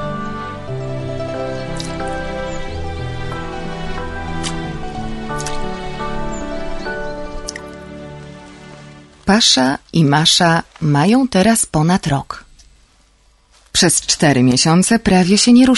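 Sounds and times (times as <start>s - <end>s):
steady sustained music: 0.0s - 10.4s
melting snow water dripping: 1.6s - 11.1s
speech: 9.3s - 12.4s, 13.8s - 15.7s.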